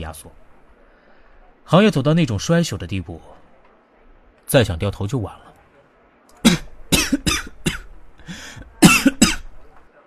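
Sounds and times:
speech: 0.0s - 0.4s, 1.7s - 3.4s, 4.5s - 5.4s
person coughing from a cold: 6.4s - 9.5s
wheezy breath: 8.2s - 8.7s.

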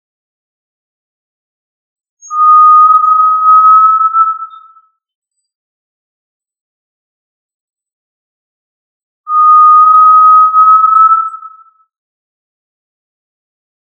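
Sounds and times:
tinamou of family Tinamidae uttering long pure whistled notes: 2.2s - 4.8s, 9.3s - 11.7s.

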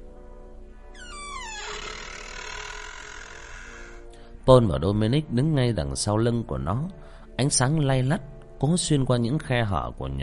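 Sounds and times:
iron door creaking as it is pushed open: 1.0s - 4.1s
speech: 4.5s - 10.2s.

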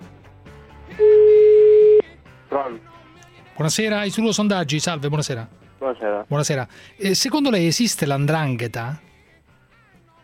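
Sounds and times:
ringback tone on a telephone line during an outgoing call: 0.9s - 2.0s
speech: 2.6s - 3.0s, 3.6s - 9.1s.

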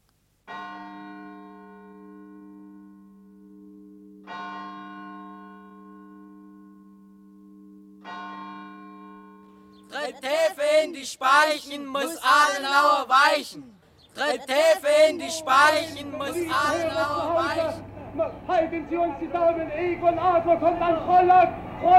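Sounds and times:
church bell ringing from a hospital chapel tower: 0.5s - 10.4s, 15.2s - 18.0s
laughter: 9.9s - 13.6s, 14.2s - 17.8s
speech: 10.1s - 21.9s.

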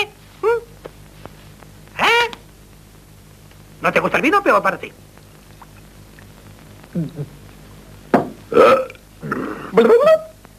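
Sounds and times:
speech: 3.8s - 5.1s, 7.0s - 7.4s, 8.5s - 8.8s
person burping while drinking wine: 8.5s - 10.2s.

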